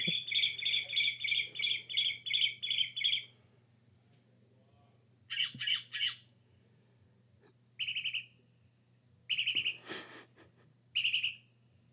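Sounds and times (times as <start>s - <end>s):
Northern mockingbird song: 0.0s - 3.3s, 5.3s - 6.2s, 9.3s - 9.8s.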